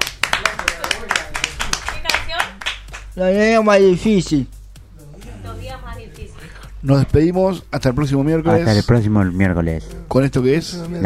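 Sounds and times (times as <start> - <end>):
audience applause at a live sung performance: 0.0 - 3.0
speech: 3.2 - 4.6, 6.8 - 11.0.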